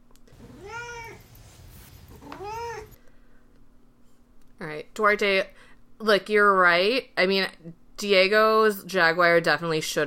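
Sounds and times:
domestic cat meowing: 0.4s - 1.4s, 2.1s - 3.0s
speech: 4.6s - 10.0s.

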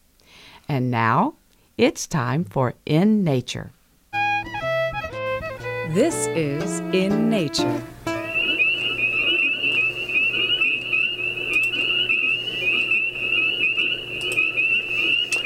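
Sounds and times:
low hum: 0.0s - 15.4s
speech: 0.7s - 3.8s, 5.9s - 7.9s
spring peepers small chorus frogs calling together in a dense chorus: 8.1s - 15.4s.

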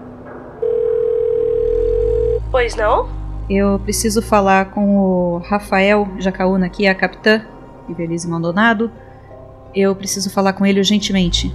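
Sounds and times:
telephone dial tone: 0.6s - 2.4s
speech: 2.5s - 9.0s, 9.7s - 11.5s.

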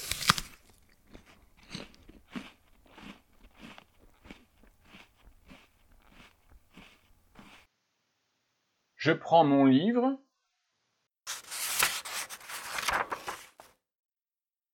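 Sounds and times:
crisp bite into an apple: 0.0s - 7.7s
crunchy chewing of an apple: 0.0s - 7.7s
speech: 9.0s - 10.2s.

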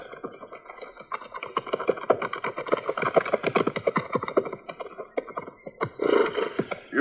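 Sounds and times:
horses' hooves clip-clopping as riders approach: 0.0s - 6.9s.

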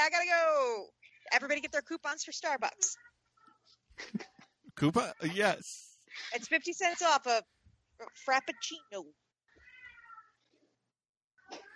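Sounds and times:
speech: 0.0s - 3.2s, 4.0s - 9.2s
cat meowing outside: 9.6s - 10.4s, 11.4s - 11.7s.

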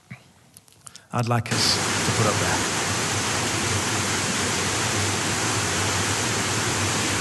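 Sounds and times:
speech: 1.1s - 2.8s
roar of rushing water from Victoria Falls: 1.5s - 7.1s.

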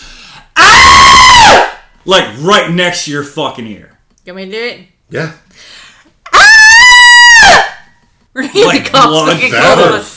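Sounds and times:
people imitating a blood-curdling banshee screech: 0.6s - 1.7s, 6.3s - 7.8s
speech: 2.1s - 5.8s, 8.4s - 10.1s.

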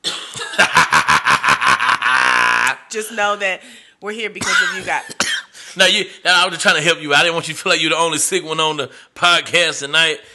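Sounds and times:
person coughing: 0.0s - 1.0s, 4.4s - 5.6s
laughter: 0.6s - 2.7s
speech: 3.0s - 5.1s, 5.8s - 10.3s.

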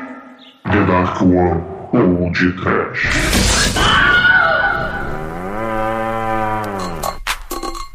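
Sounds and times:
speech: 0.7s - 4.0s
cow mooing: 4.9s - 7.2s.

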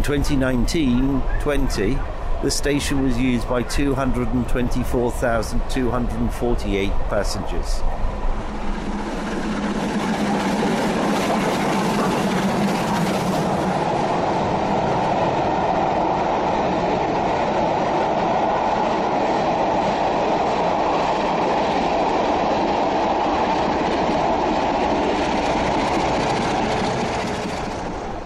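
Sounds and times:
speech: 0.0s - 8.0s
heavy locomotive-hauled train rumbling along the rails at speed: 0.0s - 28.2s
faint train wheel clatter: 8.4s - 28.2s.

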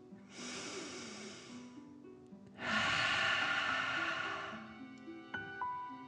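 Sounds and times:
soft music: 0.0s - 6.0s
slow deep inhale through the nose and exhale out the mouth: 0.3s - 1.8s, 2.6s - 5.0s.

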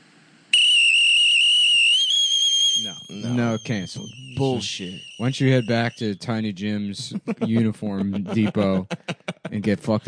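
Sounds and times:
person whistling a high note with a tongue flutter trill: 0.6s - 6.1s
speech: 2.8s - 10.0s
laughter: 3.1s - 10.0s.

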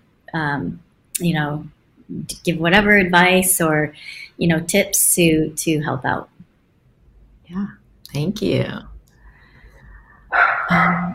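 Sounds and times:
faint low hum: 0.0s - 11.1s
speech: 0.3s - 6.4s, 7.5s - 8.9s, 10.7s - 11.1s
small pet dog barking: 10.3s - 11.1s.

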